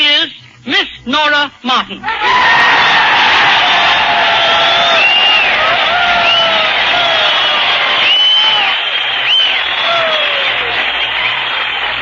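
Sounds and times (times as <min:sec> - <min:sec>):
speech: 0:01.0 - 0:02.5
crowd whoops and cheers: 0:02.1 - 0:11.4
large crowd applauding at Scott Field: 0:02.1 - 0:12.0
sharp rising whistles from a crowd: 0:04.2 - 0:11.4.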